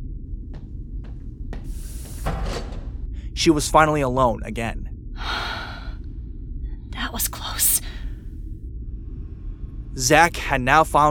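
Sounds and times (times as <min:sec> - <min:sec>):
steady low mechanical hum of an elevator activating: 0:00.0 - 0:11.0
elevator clunks: 0:01.1 - 0:03.3
sliding elevator door opening with an airy rush: 0:01.2 - 0:03.1
speech: 0:03.4 - 0:04.9, 0:10.0 - 0:11.0.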